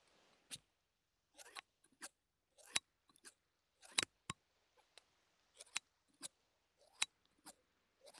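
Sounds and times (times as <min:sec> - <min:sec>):
scissors snipping: 0:01.4 - 0:04.1, 0:05.6 - 0:08.1.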